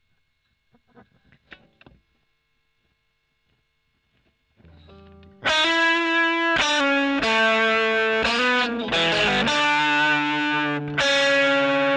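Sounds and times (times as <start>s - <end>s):
overdriven electric guitar: 4.6s - 11.9s.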